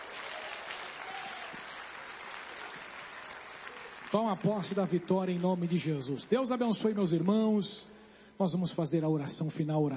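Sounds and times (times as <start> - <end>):
crowd clapping energetically: 0.0 - 7.7
speech: 4.1 - 9.9.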